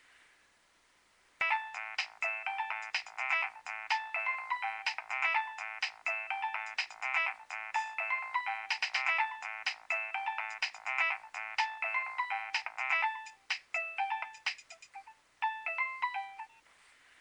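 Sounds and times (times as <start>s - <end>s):
Nokia 3100 mobile phone ringtone: 1.4s - 16.6s.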